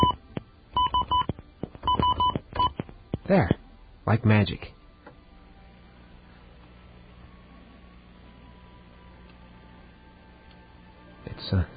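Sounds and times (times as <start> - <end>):
telephone keypad dialing beeps placing a call: 0.8 - 2.8
speech: 3.3 - 4.8, 11.5 - 11.7.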